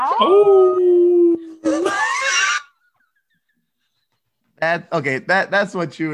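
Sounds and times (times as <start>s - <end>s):
speech: 0.0s - 1.0s, 4.6s - 6.1s
person imitating a wolf howl through cupped hands: 0.0s - 2.0s.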